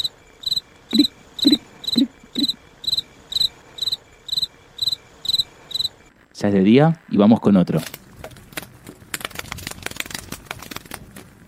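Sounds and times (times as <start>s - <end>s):
crickets chirping at night: 0.0s - 6.5s
speech: 6.4s - 8.0s.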